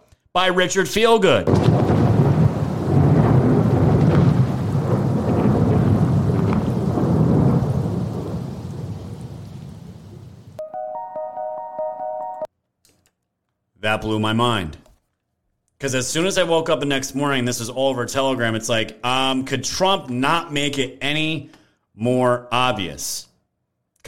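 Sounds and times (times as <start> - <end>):
speech: 0.4 - 2.2, 14.0 - 14.8, 15.8 - 23.3
loud rolling thunder from a played soundtrack: 1.5 - 10.6
rain from a played soundtrack: 1.5 - 10.6
short steady musical tone: 10.6 - 12.5.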